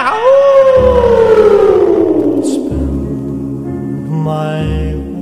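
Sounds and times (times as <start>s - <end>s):
wolf howling: 0.1s - 4.2s
low rumble: 0.9s - 5.1s.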